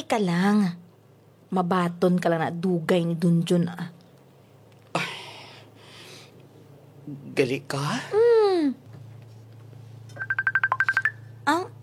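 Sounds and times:
speech: 0:00.0 - 0:00.8, 0:01.5 - 0:04.0, 0:07.1 - 0:08.9, 0:11.5 - 0:11.7
cellphone electronic ringtone for incoming call: 0:10.2 - 0:11.4.

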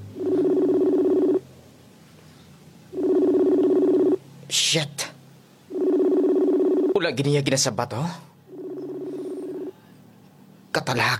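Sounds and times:
cellphone dialing tones while calling someone: 0:00.0 - 0:01.4, 0:02.9 - 0:04.2, 0:05.7 - 0:07.0, 0:08.5 - 0:09.8
speech: 0:04.5 - 0:05.0, 0:07.1 - 0:08.3.

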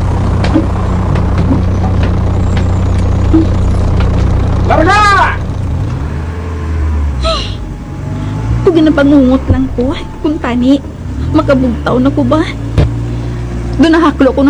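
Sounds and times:
heavy bus engine droning during a bus ride: 0:00.0 - 0:14.4
speech: 0:04.7 - 0:05.0, 0:08.8 - 0:12.9, 0:13.8 - 0:14.4.

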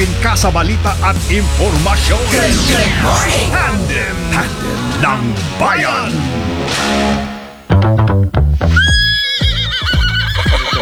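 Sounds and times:
speech: 0:00.0 - 0:07.3
horse neighing: 0:08.8 - 0:10.8.

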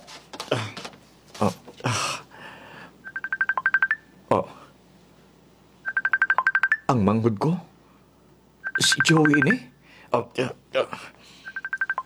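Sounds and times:
speech: 0:01.4 - 0:02.0, 0:06.9 - 0:07.7, 0:08.8 - 0:11.1
phone call dialing tones: 0:03.0 - 0:04.0, 0:05.9 - 0:06.9, 0:08.6 - 0:09.6, 0:11.4 - 0:12.0.

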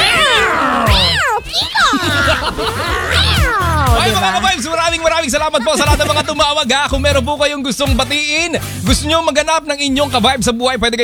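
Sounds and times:
several cats yowling and caterwauling: 0:00.0 - 0:06.4
laughter: 0:00.0 - 0:10.9
speech: 0:05.3 - 0:11.0.

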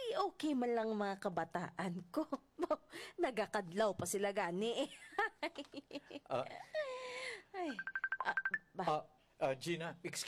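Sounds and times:
speech: 0:00.2 - 0:10.2
cellphone ringtone for an incoming call: 0:07.8 - 0:08.7.

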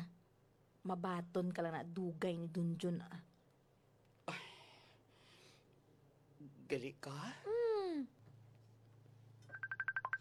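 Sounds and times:
speech: 0:00.8 - 0:03.3, 0:06.4 - 0:08.2
cellphone ringing with bright electronic beeps for incoming call: 0:09.5 - 0:10.1.

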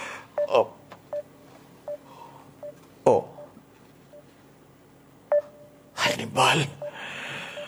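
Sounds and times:
cellphone keypad beeps while dialing: 0:00.4 - 0:02.8, 0:03.3 - 0:04.3, 0:05.3 - 0:05.7, 0:06.8 - 0:07.6
speech: 0:00.5 - 0:00.8.

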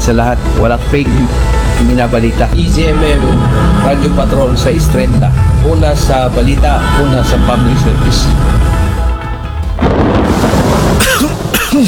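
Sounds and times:
speech: 0:00.1 - 0:08.8, 0:11.2 - 0:11.8
thunder: 0:02.5 - 0:11.8
rain: 0:08.8 - 0:11.8
person coughing: 0:11.0 - 0:11.8.

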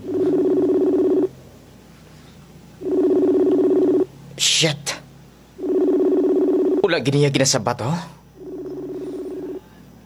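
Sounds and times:
long steady electronic beeps through a cellphone handset: 0:00.0 - 0:01.3, 0:02.8 - 0:04.1, 0:05.6 - 0:07.2, 0:08.4 - 0:09.7
speech: 0:04.4 - 0:05.0, 0:06.9 - 0:08.2.

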